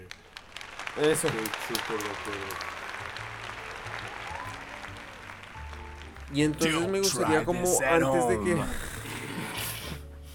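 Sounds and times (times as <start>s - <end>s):
hands clapping: 0.0s - 7.5s
speech: 1.0s - 2.8s, 6.3s - 8.9s.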